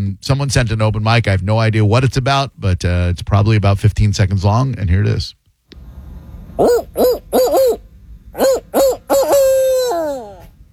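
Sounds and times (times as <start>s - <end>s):
speech: 0.2s - 5.4s, 6.6s - 7.8s, 8.4s - 9.4s
person imitating barred owl hoots: 6.6s - 7.8s, 8.4s - 10.5s.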